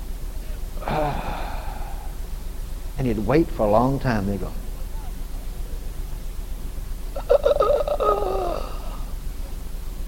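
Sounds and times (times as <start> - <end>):
faint hiss: 0.0 - 10.0
voice imitating a dying man's slow exhaled breath: 0.8 - 2.2, 7.6 - 9.1
speech: 3.0 - 4.6.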